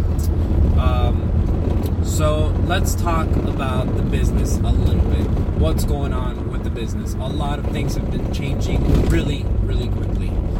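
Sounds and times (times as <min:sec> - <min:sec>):
soft-top car road noise on bumpy road: 0:00.0 - 0:10.5
speech: 0:02.7 - 0:10.2.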